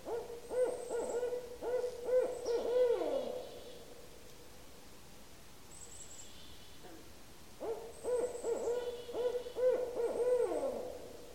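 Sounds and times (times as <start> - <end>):
barred owl hooting: 0.0 - 3.6, 7.6 - 11.1.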